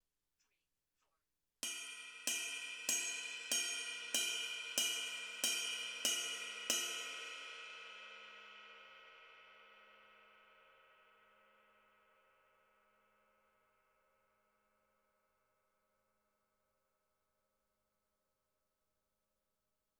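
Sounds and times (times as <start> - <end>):
ride cymbal bell: 1.6 - 7.6.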